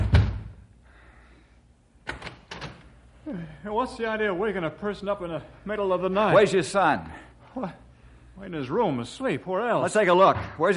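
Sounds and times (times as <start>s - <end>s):
speech: 3.3s - 7.8s, 8.4s - 10.7s
heavy door thump: 10.2s - 10.7s.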